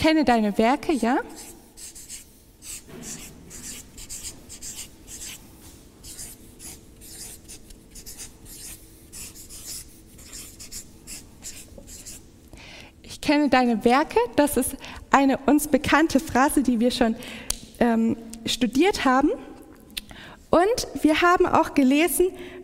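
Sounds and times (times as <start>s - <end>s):
speech: 0.0s - 1.9s, 13.3s - 19.5s, 20.5s - 22.6s
pen scratching across paper while writing: 1.2s - 12.2s.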